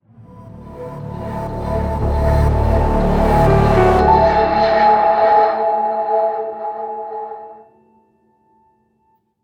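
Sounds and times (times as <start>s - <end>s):
single-note hype music stinger: 2.0s - 7.7s.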